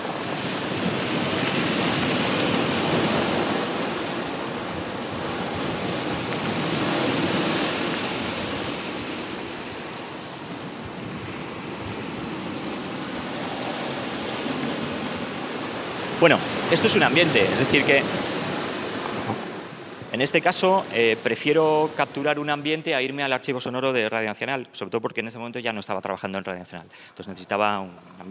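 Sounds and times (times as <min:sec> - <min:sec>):
sea waves breaking over rocks: 0:00.0 - 0:22.6
speech: 0:16.2 - 0:18.3, 0:20.2 - 0:28.2.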